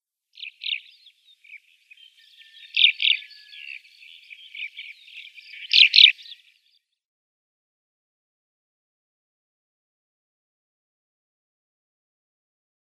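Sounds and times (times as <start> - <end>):
White-winged Lark calls: 0.4 - 6.4.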